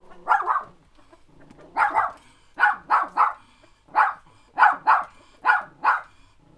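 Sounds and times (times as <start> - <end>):
dog barking: 0.0 - 0.8, 1.6 - 6.2.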